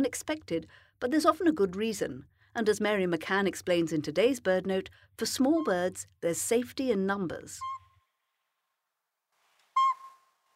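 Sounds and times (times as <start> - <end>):
speech: 0.0 - 7.8
Northern Pygmy-Owl giving a clear whistled hoot: 9.8 - 10.3.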